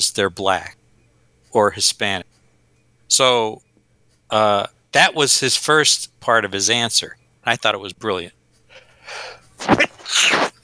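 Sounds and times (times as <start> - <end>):
speech: 0.0 - 0.8, 1.5 - 2.4, 3.1 - 3.7, 4.3 - 8.4, 9.1 - 10.5
sneeze: 9.6 - 10.6.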